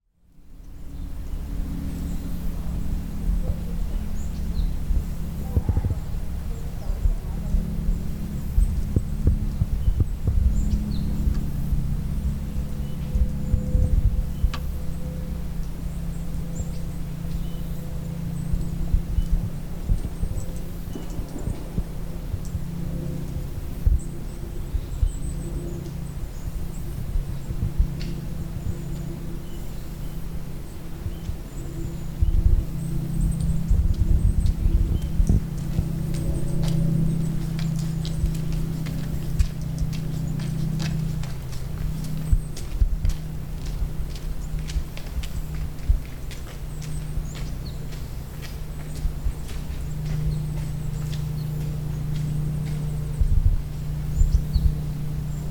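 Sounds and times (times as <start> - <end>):
airplane high in the sky: 0.0 - 55.5.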